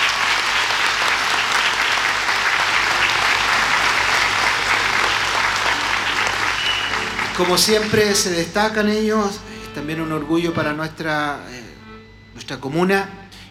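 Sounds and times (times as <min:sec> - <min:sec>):
sizable audience applauding: 0:00.0 - 0:08.8
speech: 0:07.4 - 0:11.7, 0:12.4 - 0:13.2.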